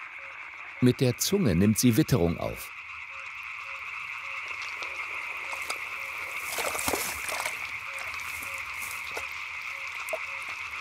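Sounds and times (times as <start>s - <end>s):
chorus of frogs croaking to attract mates: 0.0s - 10.7s
speech: 0.8s - 2.8s
rustle or splash: 4.6s - 10.7s.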